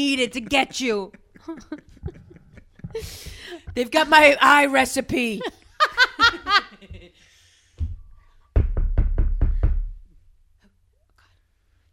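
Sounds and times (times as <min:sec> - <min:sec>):
speech: 0:00.0 - 0:02.0, 0:03.0 - 0:06.1
people laughing: 0:00.2 - 0:03.3, 0:05.4 - 0:07.3
loud knocks on a door: 0:08.6 - 0:10.0.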